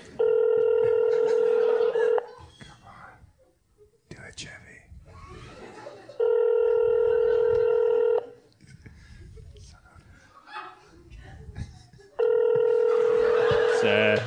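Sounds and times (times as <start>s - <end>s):
phone line ringing out on an outgoing call: 0.1s - 2.3s, 6.2s - 8.4s, 12.2s - 13.9s
laughter: 0.8s - 2.6s, 5.1s - 14.2s.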